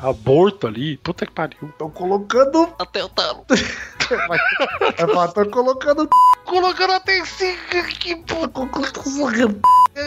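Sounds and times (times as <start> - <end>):
speech: 0.0 - 10.0
laughter: 3.5 - 5.5
steady censorship bleep tone over profanity: 6.1 - 6.4, 9.6 - 9.9.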